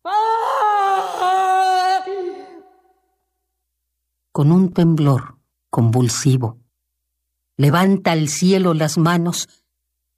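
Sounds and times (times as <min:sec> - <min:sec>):
person screaming in anguish: 0:00.0 - 0:02.9
speech: 0:04.4 - 0:06.6, 0:07.6 - 0:09.6.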